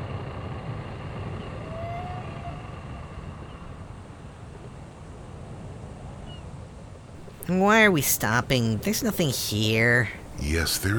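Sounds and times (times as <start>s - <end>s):
boat engine idling: 0.0s - 5.7s
wind and water noise: 0.0s - 10.9s
speech: 7.5s - 10.9s.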